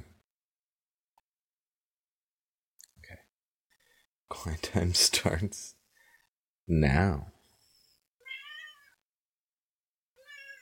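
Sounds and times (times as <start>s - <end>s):
speech: 4.3s - 5.8s, 6.7s - 7.3s
cat meowing: 8.2s - 9.0s, 10.2s - 10.6s.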